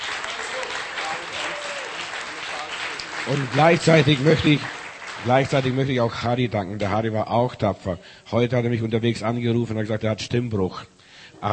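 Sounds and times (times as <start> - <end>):
applause from a church congregation: 0.0 - 6.2
speech: 3.3 - 11.5.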